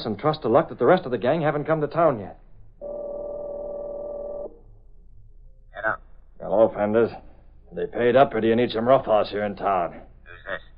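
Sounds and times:
speech: 0:00.0 - 0:02.4, 0:06.5 - 0:10.7
faint low hum: 0:00.0 - 0:10.7
telephone line tone while dialing a hotel room: 0:02.8 - 0:04.5.

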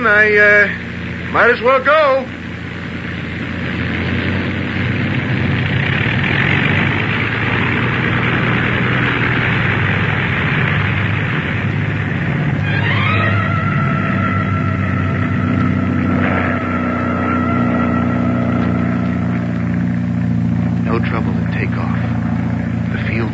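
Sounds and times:
speech: 0:00.0 - 0:02.4
airplane propeller engine droning and revving: 0:00.0 - 0:23.3.

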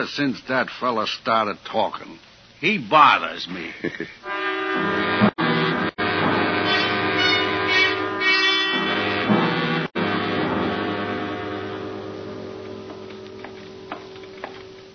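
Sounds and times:
speech: 0:00.0 - 0:05.0
droning horn-like tone: 0:04.2 - 0:14.1
train rumbling past: 0:04.2 - 0:14.9.

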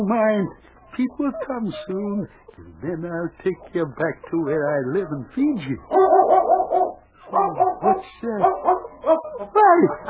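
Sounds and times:
speech: 0:00.0 - 0:06.5, 0:07.3 - 0:10.0
dog barking and yelping: 0:05.8 - 0:10.0.

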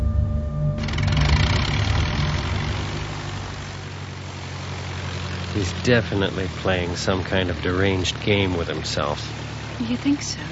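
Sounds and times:
small aircraft engine at takeoff from a short runway: 0:00.0 - 0:10.5
speech: 0:05.6 - 0:10.5.

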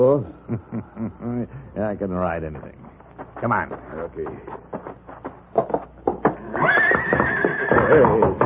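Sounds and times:
speech: 0:00.0 - 0:04.8, 0:07.9 - 0:08.4
laughter: 0:00.4 - 0:01.6
stallion whinnying in a barn stall: 0:06.3 - 0:08.4.

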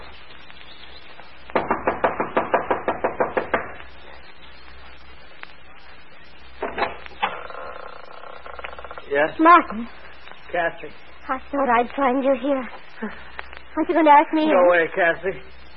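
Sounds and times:
rapid insistent knocking on a wooden lodge front door: 0:01.6 - 0:03.7
speech: 0:09.2 - 0:15.5.

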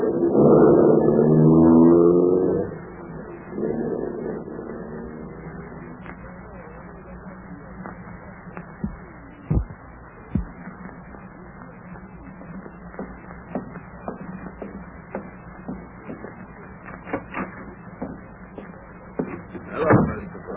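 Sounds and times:
car engine revving and accelerating as the vehicle pulls away: 0:00.0 - 0:06.0.

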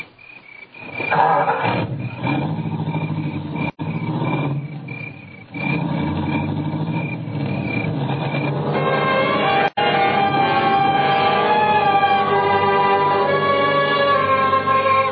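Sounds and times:
car engine revving and pulling off: 0:00.9 - 0:15.0.

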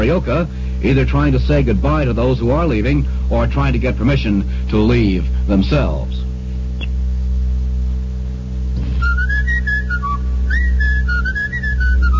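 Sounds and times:
steady low electrical hum: 0:00.0 - 0:12.1
speech: 0:00.1 - 0:06.2
person whistling a lively bouncing melody: 0:09.0 - 0:12.1.

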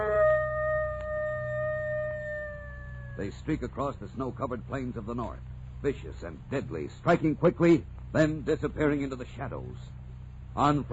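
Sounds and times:
wolf howling: 0:00.0 - 0:03.3
speech: 0:03.2 - 0:10.0, 0:10.6 - 0:10.9.

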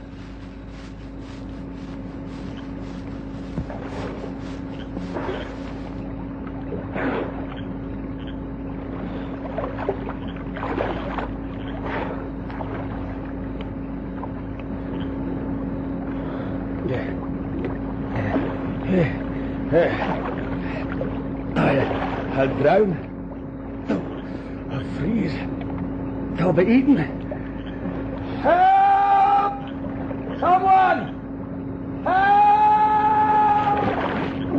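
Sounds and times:
water sloshing and splashing as someone treads water and swims in a pool: 0:00.0 - 0:07.6, 0:09.5 - 0:13.3, 0:19.9 - 0:23.0, 0:33.7 - 0:34.5
faint rumble: 0:00.0 - 0:34.5
steady low droning hum: 0:00.0 - 0:34.5
speech: 0:26.6 - 0:27.2.

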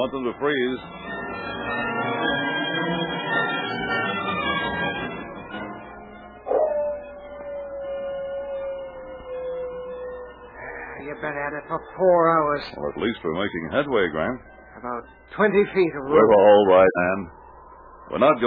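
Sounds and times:
speech: 0:00.0 - 0:05.0, 0:11.1 - 0:17.4, 0:18.1 - 0:18.4
dog barking and yelping: 0:06.5 - 0:09.9
dog whining howl: 0:06.5 - 0:10.6.

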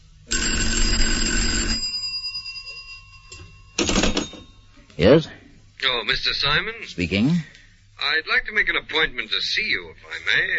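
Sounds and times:
old-fashioned telephone bell ringing: 0:00.3 - 0:04.8
speech: 0:05.0 - 0:10.5.

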